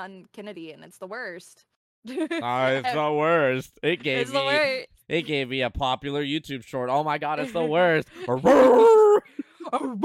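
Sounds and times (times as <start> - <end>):
speech: 0.0 - 10.0
laughter: 2.1 - 3.1, 3.8 - 4.6, 7.3 - 10.0
person imitating a dog howling and barking: 8.3 - 10.0.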